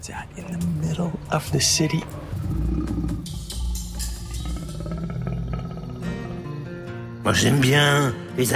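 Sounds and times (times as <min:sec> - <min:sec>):
speech: 0:00.0 - 0:02.2, 0:07.3 - 0:08.5
leopard growling in a low rough rumble: 0:02.1 - 0:07.0.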